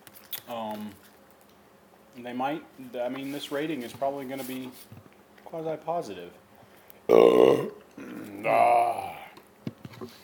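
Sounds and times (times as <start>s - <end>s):
speech: 0.5s - 1.1s, 2.2s - 6.4s, 7.1s - 7.8s, 8.4s - 9.0s
shuffling noises: 2.8s - 5.1s
person burping: 7.1s - 9.4s.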